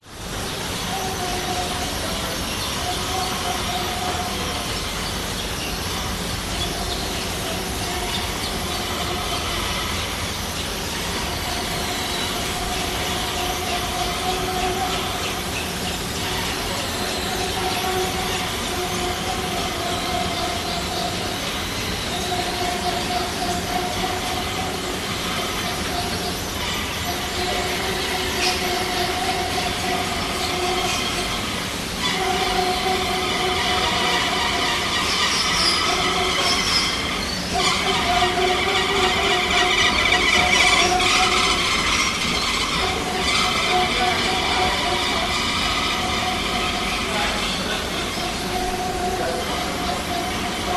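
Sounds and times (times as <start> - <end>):
city subway moving walkway in Sydney: 0.0 - 50.7.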